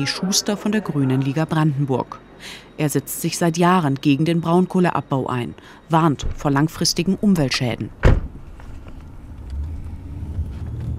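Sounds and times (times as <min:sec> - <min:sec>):
speech: 0:00.0 - 0:08.2
car engine and road noise driving through small villages: 0:07.9 - 0:10.9.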